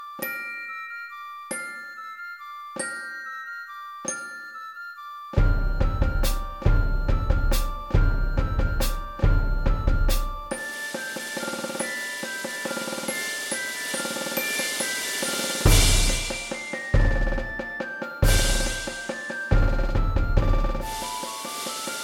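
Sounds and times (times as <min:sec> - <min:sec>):
drum kit playing: 0:05.4 - 0:22.0.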